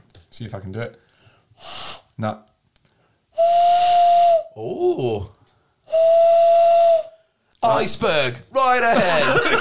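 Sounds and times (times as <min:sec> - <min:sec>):
speech: 0:00.4 - 0:02.5, 0:04.6 - 0:06.2, 0:07.6 - 0:09.5
owl hoots imitated by blowing into cupped hands: 0:03.4 - 0:04.6, 0:05.9 - 0:07.2
laughter: 0:08.8 - 0:09.5.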